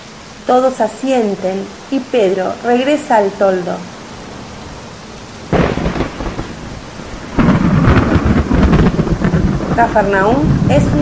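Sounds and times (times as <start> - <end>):
steady rain pouring during a storm: 0.0 - 10.9
speech: 0.5 - 3.9, 9.8 - 10.9
deep rolls of thunder: 3.7 - 10.9.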